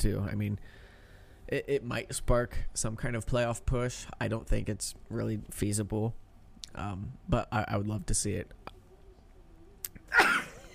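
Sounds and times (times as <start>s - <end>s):
speech: 0.0s - 0.8s, 1.5s - 8.6s
sneeze: 10.1s - 10.6s.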